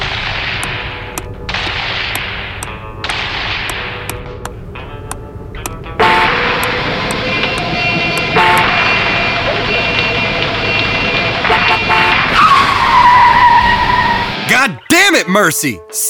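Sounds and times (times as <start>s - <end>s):
low rumble of a moving car: 0.0s - 14.5s
speech: 15.2s - 16.0s.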